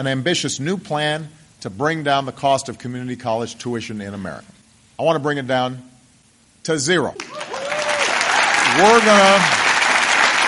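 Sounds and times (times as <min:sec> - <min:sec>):
speech: 0:00.0 - 0:05.9, 0:06.6 - 0:07.4, 0:08.7 - 0:09.6
person whooping: 0:07.2 - 0:08.7
large crowd applauding: 0:07.2 - 0:10.4.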